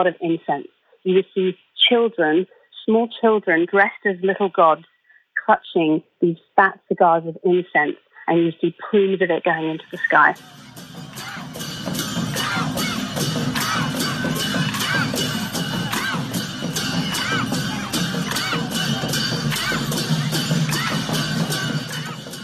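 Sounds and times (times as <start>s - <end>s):
speech: 0.0s - 4.9s, 5.5s - 10.8s
dense festival crowd shouting and cheering: 9.8s - 22.4s.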